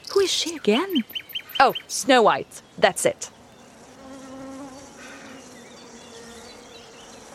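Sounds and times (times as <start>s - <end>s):
speech: 0.1s - 3.4s
bees buzzing: 3.7s - 7.3s.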